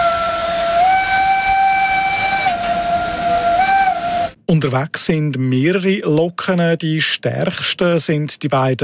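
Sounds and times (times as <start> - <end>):
steam cog railway train whistle: 0.0 - 4.4
faint rumble of the railway: 0.0 - 4.5
speech: 4.5 - 8.8.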